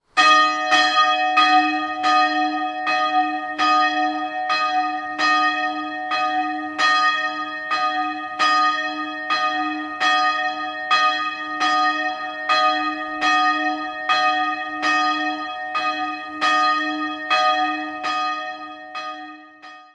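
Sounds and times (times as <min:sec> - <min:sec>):
single 1956 church bell tuned E-flat, cast in Erding, Kipfenberg: 0:00.0 - 0:19.9.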